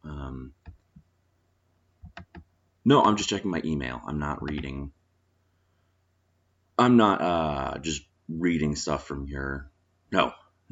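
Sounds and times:
computer mouse scroll wheel clicking while checking email: 2.0s - 2.5s
speech: 2.8s - 5.0s, 6.8s - 10.7s.

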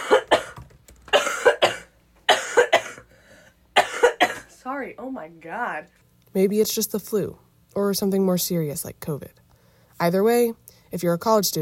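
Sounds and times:
harsh wet coughing: 0.0s - 3.1s, 3.8s - 4.6s
speech: 4.8s - 9.4s, 10.0s - 11.5s.

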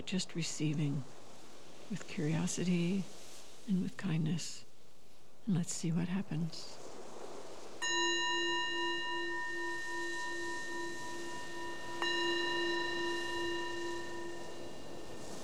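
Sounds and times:
speech: 0.0s - 1.2s, 1.9s - 4.6s, 5.5s - 6.8s
meditation bell ringing: 7.8s - 15.4s.

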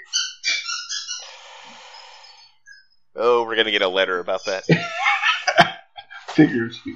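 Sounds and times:
dog squeezing a squeaky toy: 0.0s - 2.2s
speech: 3.2s - 5.0s, 6.4s - 6.9s
laughter: 3.2s - 6.9s.

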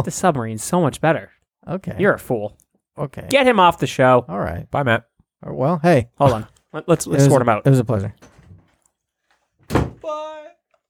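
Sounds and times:
speech: 0.0s - 8.4s
door shutting with a heavy thud: 9.6s - 10.1s.

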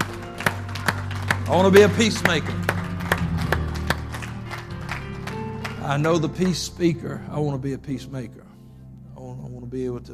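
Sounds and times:
church discipleship class audience applause after a prayer: 0.0s - 6.6s
speech: 1.5s - 2.7s, 5.9s - 8.5s, 9.7s - 10.1s.

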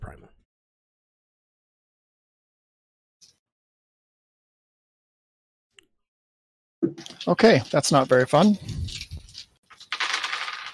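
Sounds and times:
speech: 6.9s - 9.0s
dice rolling across a hard surface: 9.7s - 10.7s.

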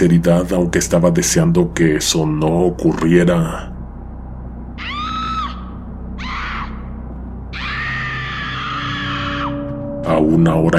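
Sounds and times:
speech: 0.0s - 3.7s, 10.2s - 10.7s
steady low rumble: 0.0s - 10.7s
woman screaming loudly: 4.8s - 9.7s.

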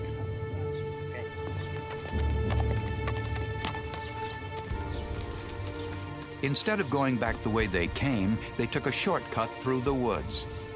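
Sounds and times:
horses' hooves clip-clopping: 0.0s - 7.7s
speech: 6.4s - 10.6s.

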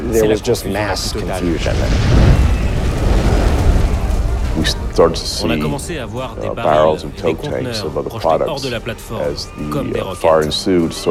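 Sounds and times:
speech: 0.1s - 2.6s, 4.6s - 11.0s
massive oil platform explosion roaring rumble: 1.0s - 6.5s
brief sharp crackle: 1.0s - 6.6s.

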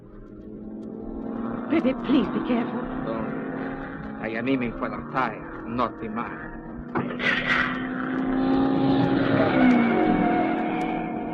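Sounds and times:
speeding racing car engine roar: 0.2s - 11.3s
speech: 1.7s - 3.2s, 4.2s - 7.5s.

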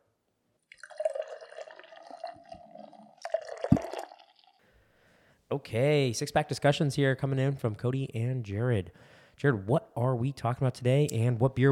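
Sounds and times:
beer pouring into a glass: 0.7s - 4.6s
speech: 5.5s - 11.7s.

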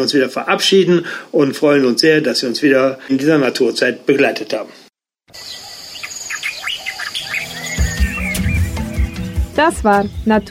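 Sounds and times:
speech: 0.0s - 5.6s, 9.6s - 10.4s
bright bird calls and chirps: 5.3s - 10.4s.

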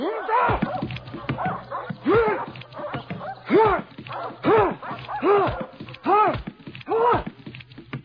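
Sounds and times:
dogs whimpering: 0.0s - 5.7s
dogs barking: 0.0s - 7.4s.

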